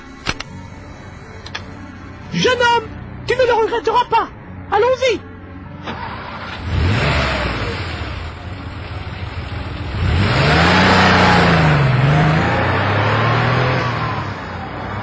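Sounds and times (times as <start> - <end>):
speech: 2.3 - 6.2
car engine revving and pulling away: 5.8 - 15.0.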